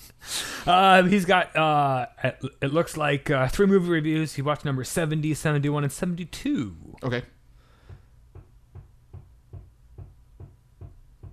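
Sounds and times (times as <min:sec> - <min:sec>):
speech: 0:00.6 - 0:07.4
hammering from beyond a wall next door: 0:07.8 - 0:11.3.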